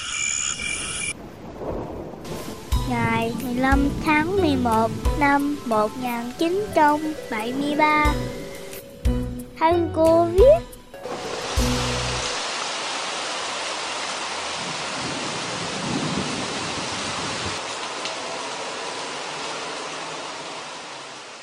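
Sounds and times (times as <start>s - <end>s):
steady heavy rain from a thunderstorm: 1.1s - 8.2s, 11.0s - 21.4s
low thunder rumble: 1.2s - 5.6s, 14.6s - 17.6s
speech: 2.9s - 8.4s, 9.6s - 10.7s.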